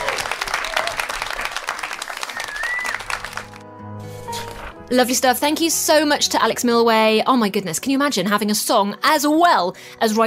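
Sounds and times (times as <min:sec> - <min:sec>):
whoops: 0:00.0 - 0:01.4, 0:02.2 - 0:03.2
crowd applauding: 0:00.0 - 0:03.7
speech: 0:04.9 - 0:10.2.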